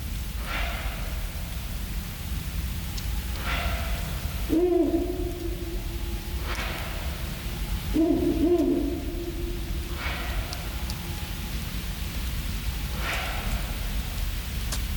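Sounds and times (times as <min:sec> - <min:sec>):
steady low noise: 0:00.0 - 0:14.9
Ural owl deep wavering hoots in a forest at night: 0:03.2 - 0:14.3
Ural owl higher rasping bark in a forest at night: 0:03.4 - 0:07.2, 0:07.8 - 0:10.8.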